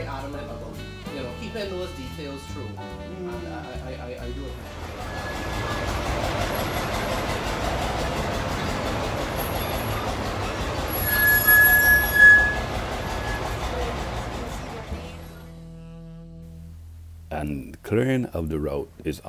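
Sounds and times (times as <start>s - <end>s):
speech: 1.5s - 5.3s, 17.4s - 19.2s
heritage railway train running on tracks: 4.7s - 15.0s
high metallic train wheel squeal: 5.0s - 7.3s, 9.3s - 14.1s.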